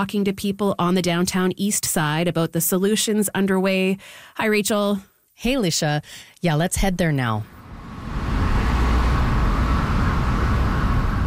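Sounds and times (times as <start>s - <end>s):
speech: 0.0s - 7.6s
street traffic of trucks and cars outside a downtown building: 7.5s - 11.2s.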